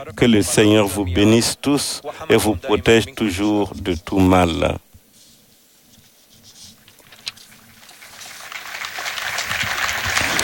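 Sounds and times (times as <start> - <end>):
speech: 0.0 - 4.8
large outdoor crowd applauding in Saint Peter's Square: 7.8 - 10.4.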